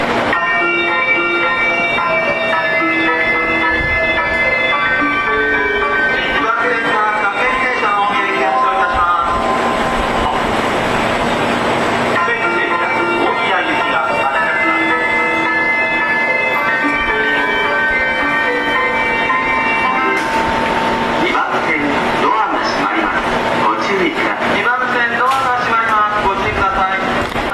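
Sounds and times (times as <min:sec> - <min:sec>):
train station departure melody: 0:00.0 - 0:27.5.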